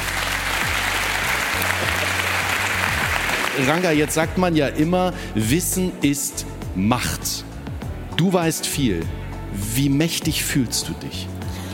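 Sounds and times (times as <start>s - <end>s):
audience applause at a book fair: 0.0s - 4.2s
speech: 3.6s - 7.5s, 8.2s - 11.4s.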